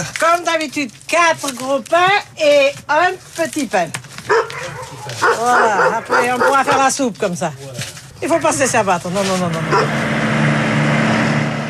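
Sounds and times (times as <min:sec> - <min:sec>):
speech: 0:00.0 - 0:04.5, 0:05.1 - 0:10.2
broadband road noise: 0:00.0 - 0:11.6
bakery delivery truck engine droning from inside the cab while driving: 0:08.2 - 0:11.6.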